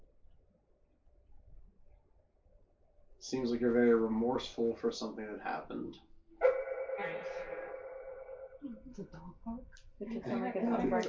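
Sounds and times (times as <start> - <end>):
speech: 3.2 - 6.1, 8.6 - 11.0
dog barking in short yaps: 6.4 - 8.6
long high whining tone: 6.4 - 9.7.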